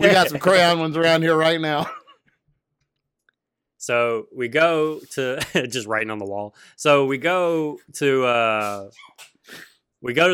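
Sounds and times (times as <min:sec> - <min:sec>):
laughter: 0:00.0 - 0:00.9
speech: 0:00.0 - 0:02.0, 0:03.8 - 0:10.3
person sneezing: 0:08.6 - 0:09.7.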